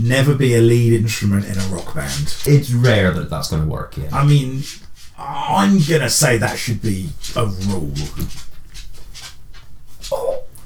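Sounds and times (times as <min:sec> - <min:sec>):
speech: 0:00.0 - 0:08.5
dog whimpering: 0:10.1 - 0:10.6.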